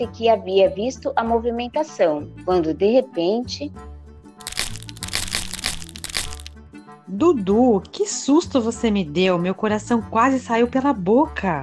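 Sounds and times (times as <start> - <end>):
speech: 0.0 - 3.9, 7.1 - 11.6
branches breaking with cracks and crunches: 4.4 - 6.5.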